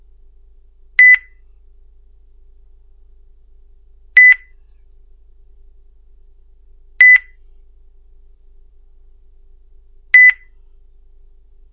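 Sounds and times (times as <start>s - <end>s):
faint low hum: 0.0s - 11.7s
short electronic beeps from a phone line after a call is cut off: 1.0s - 1.3s, 4.2s - 4.5s, 7.0s - 7.4s, 10.2s - 10.5s.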